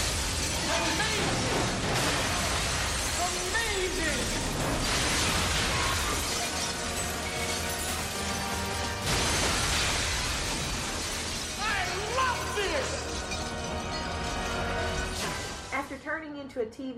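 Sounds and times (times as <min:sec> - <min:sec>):
windows shattering: 0:00.0 - 0:15.7
speech: 0:16.6 - 0:16.9.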